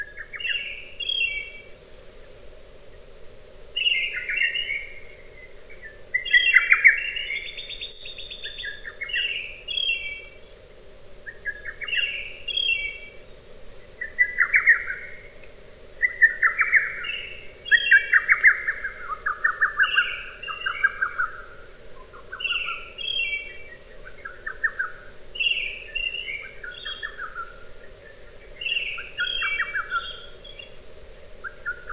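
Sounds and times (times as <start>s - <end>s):
steady low hiss: 0.0s - 31.9s
lesser cuckoo calling: 28.1s - 31.9s.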